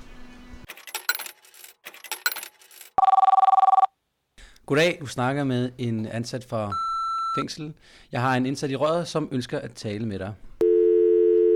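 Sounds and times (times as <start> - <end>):
metallic jangling and clinking: 0.7 - 3.0
telephone bell ringing: 3.0 - 3.9, 10.6 - 11.5
speech: 4.7 - 10.5.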